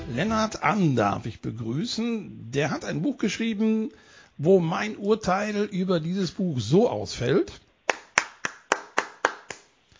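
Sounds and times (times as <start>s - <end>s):
speech: 0.1s - 7.6s
single person clapping: 7.9s - 9.8s.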